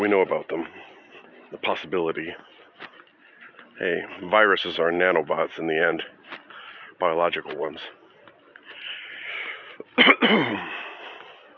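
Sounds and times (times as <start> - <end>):
speech: 0.0 - 0.8, 1.5 - 2.6, 3.8 - 6.2, 7.0 - 8.0, 10.0 - 10.8
forceful cough: 9.9 - 10.9.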